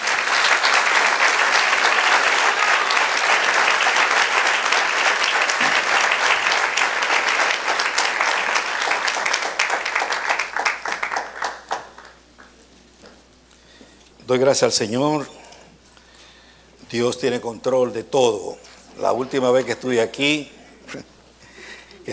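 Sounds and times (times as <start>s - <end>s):
audience applauding: 0.0s - 12.6s
speech: 14.3s - 15.4s, 16.9s - 21.1s.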